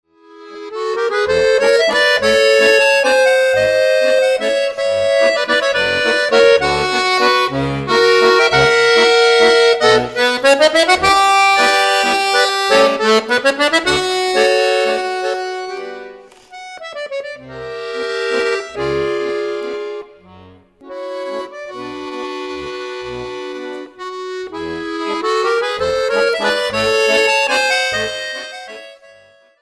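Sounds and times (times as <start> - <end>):
lyrical waltz music: 0.1 - 29.6.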